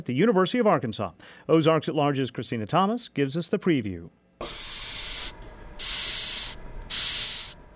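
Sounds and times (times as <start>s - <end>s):
speech: 0.0s - 4.7s
Madagascar hissing cockroach hissing: 4.4s - 7.6s.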